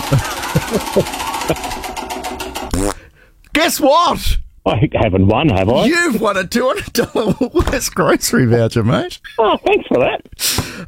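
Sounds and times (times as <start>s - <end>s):
laughter: 0.0s - 2.0s, 6.7s - 7.6s, 9.2s - 10.3s
prize wheel printed with grocery voucher prizes clicking as it is spun: 0.0s - 2.9s
speech: 0.1s - 1.8s, 3.6s - 10.8s.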